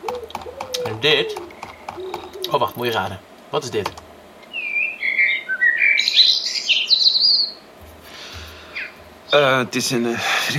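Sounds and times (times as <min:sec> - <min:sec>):
blackbird singing: 0:00.0 - 0:03.1, 0:04.4 - 0:07.6, 0:08.6 - 0:09.6
soft hiss: 0:00.0 - 0:10.5
speech: 0:00.8 - 0:01.5, 0:02.5 - 0:04.0, 0:09.3 - 0:10.5.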